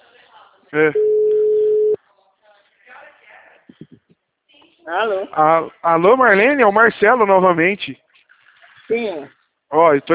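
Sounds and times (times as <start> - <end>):
speech: 0.7 - 1.2, 4.9 - 8.0, 8.9 - 10.1
ringback tone on an outgoing phone call: 1.0 - 2.0.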